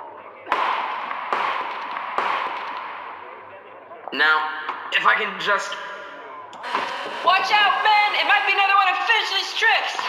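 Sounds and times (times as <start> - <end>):
gunshots shooting a padlock off a door: 0.5 - 3.4
speech: 4.1 - 5.9, 6.6 - 10.0
laughter: 6.6 - 9.1.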